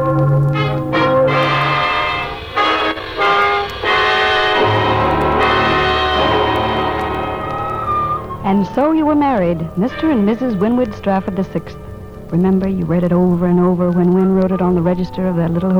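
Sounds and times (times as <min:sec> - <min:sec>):
church wedding bells pealing on a Sunday morning: 0:00.0 - 0:15.7
speech: 0:08.7 - 0:15.7.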